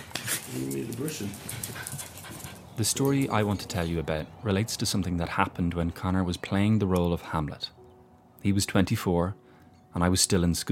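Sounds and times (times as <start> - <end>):
dog panting: 0.0 - 3.8
speech: 0.5 - 2.0, 2.8 - 7.8, 8.4 - 9.4, 10.0 - 10.6.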